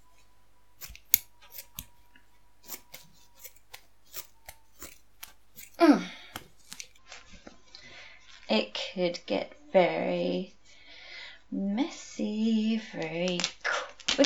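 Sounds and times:
scissors snipping: 0.0s - 7.0s
speech: 8.5s - 10.6s, 11.5s - 13.6s.

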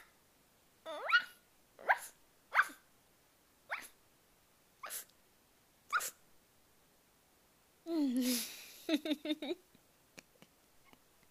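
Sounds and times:
person imitating a dog barking: 0.9s - 2.7s, 5.9s - 6.2s
speech: 8.9s - 9.7s.

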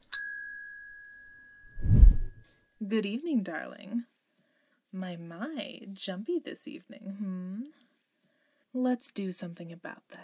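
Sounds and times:
counter service bell tapped: 0.0s - 1.8s
speech: 2.8s - 4.1s, 4.9s - 7.8s, 8.7s - 10.2s.

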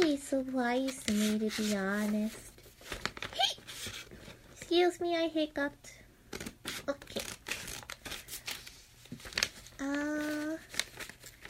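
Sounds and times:
crinkly paper crinkling and rustling: 0.0s - 4.4s, 6.4s - 11.4s
speech: 0.2s - 3.1s, 4.7s - 6.0s, 9.8s - 10.6s.

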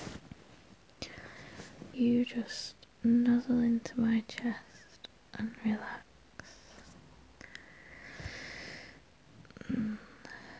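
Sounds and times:
faint rustling: 0.0s - 2.5s
slow soft breathing: 1.0s - 2.0s, 6.4s - 9.0s
speech: 2.0s - 4.8s, 5.4s - 6.1s.

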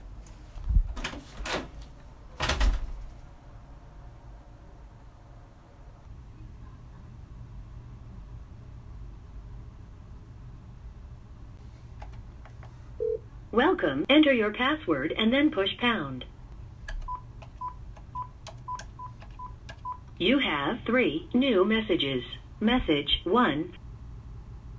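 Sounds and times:
steady low room hum: 0.0s - 24.7s
door pushed shut with solid knocks and a heavy thud: 2.4s - 3.1s
speech: 13.6s - 16.3s, 20.2s - 23.8s.

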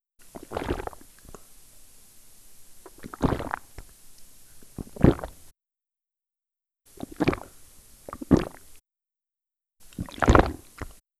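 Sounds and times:
pump: 0.2s - 1.8s, 2.8s - 3.9s, 4.5s - 5.5s, 6.9s - 8.7s, 9.8s - 11.0s.

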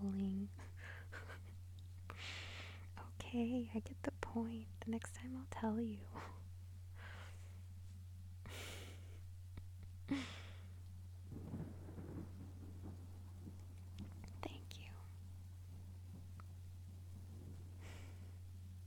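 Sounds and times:
steady low hum: 0.0s - 18.8s
speech: 3.3s - 6.4s
faint thunder rumbling on a stormy night: 11.2s - 18.8s.

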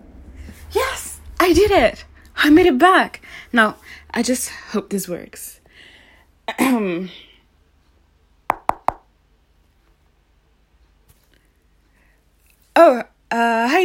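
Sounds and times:
speech: 1.5s - 5.6s, 6.5s - 7.3s, 12.8s - 13.8s
knocking on a door: 8.5s - 9.1s.

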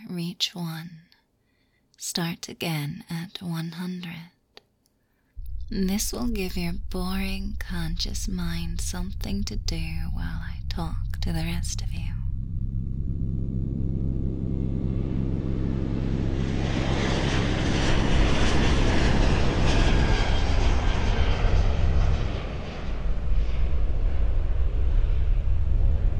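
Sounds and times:
speech: 0.1s - 1.0s, 2.0s - 4.4s, 5.7s - 12.2s
airplane engine drone in cabin in flight: 5.4s - 26.1s.

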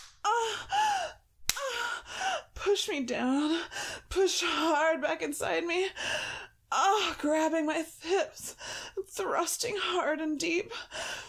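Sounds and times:
sharp slap of a hand on skin: 0.0s - 0.3s, 1.4s - 1.7s
speech: 2.6s - 11.2s.

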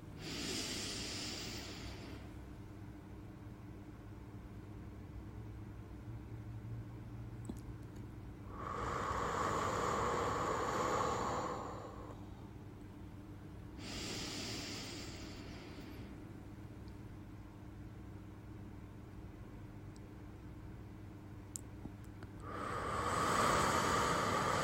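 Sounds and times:
slow exhaled breath during a relaxation breathing exercise: 0.2s - 2.3s, 8.5s - 12.4s, 13.8s - 16.2s, 22.4s - 24.6s.

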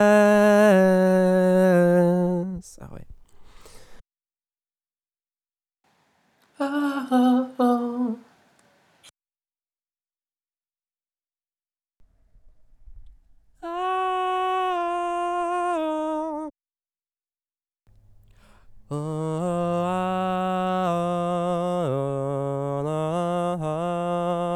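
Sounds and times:
dry vocal person singing la la la: 0.0s - 4.0s, 6.6s - 8.3s, 13.6s - 16.6s, 18.4s - 24.5s.

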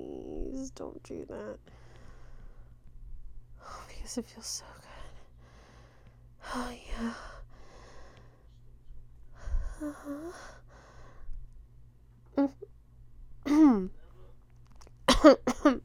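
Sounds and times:
low steady hum: 0.0s - 15.8s
speech: 0.7s - 1.8s, 4.0s - 4.9s, 6.4s - 7.4s, 9.8s - 10.6s, 12.4s - 12.8s, 13.4s - 14.0s, 15.2s - 15.8s
person coughing: 13.5s - 13.9s, 15.1s - 15.8s.

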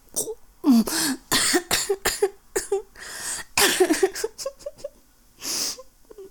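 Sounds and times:
harsh coughing fit: 0.8s - 4.9s.

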